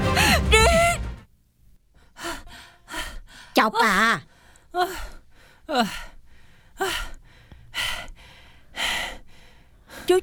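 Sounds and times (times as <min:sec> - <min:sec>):
heavy ragged panting breaths: 0:00.1 - 0:00.5, 0:02.0 - 0:03.6, 0:04.2 - 0:10.2
speech: 0:03.6 - 0:06.1.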